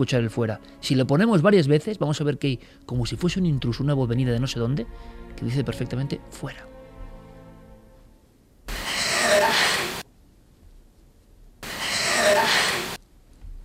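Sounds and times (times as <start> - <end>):
speech: 0.0 - 6.8
heavy labored breathing in an alleged paranormal recording: 2.6 - 2.9, 4.9 - 5.3, 8.7 - 10.0, 11.6 - 13.0.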